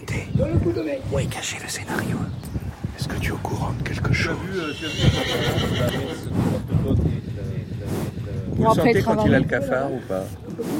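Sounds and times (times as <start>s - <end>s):
speech: 0.6s - 8.0s, 8.6s - 10.7s
carriage ride horse whinnying: 4.5s - 6.3s.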